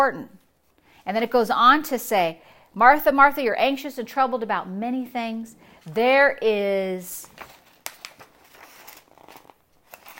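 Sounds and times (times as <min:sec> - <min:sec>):
speech: 0:00.0 - 0:00.4, 0:01.0 - 0:07.5
stapled paper pages rustling while handled: 0:07.2 - 0:10.1.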